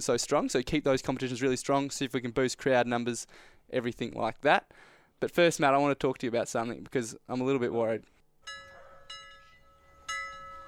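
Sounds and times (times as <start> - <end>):
speech: 0.0 - 8.6
alarm bells ringing: 8.4 - 10.6.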